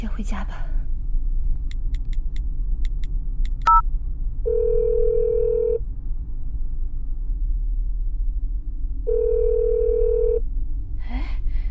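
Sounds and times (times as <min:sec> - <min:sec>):
speech: 0:00.0 - 0:00.8
constant low engine rumble: 0:00.0 - 0:11.6
quick phone keypad beeps dialing a number: 0:03.6 - 0:03.8
phone ringback tones: 0:04.5 - 0:05.8, 0:09.1 - 0:10.4.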